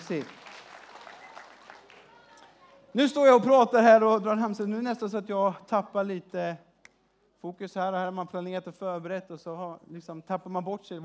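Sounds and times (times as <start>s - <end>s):
audience applauding: 0.0s - 2.5s
speech: 0.1s - 0.4s, 2.9s - 6.7s, 7.4s - 11.0s.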